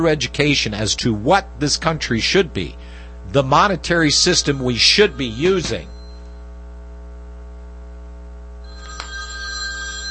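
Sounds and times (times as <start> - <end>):
speech: 0.0 - 5.9
low mains hum: 0.0 - 10.0
telephone ringing with a bright electronic trill: 4.1 - 6.4, 8.6 - 10.0.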